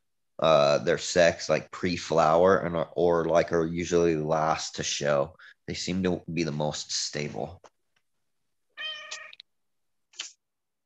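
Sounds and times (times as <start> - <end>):
speech: 0.4 - 7.7
cat meowing: 8.8 - 9.4.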